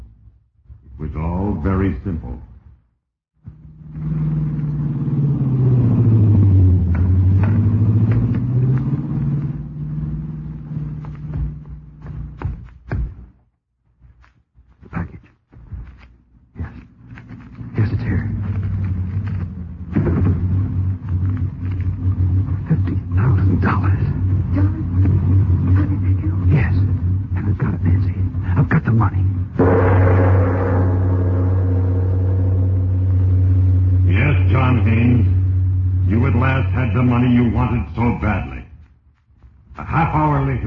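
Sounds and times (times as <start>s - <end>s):
speech: 1.1s - 2.5s
car driving past slowly with engine sputtering: 3.5s - 12.9s, 16.6s - 38.7s.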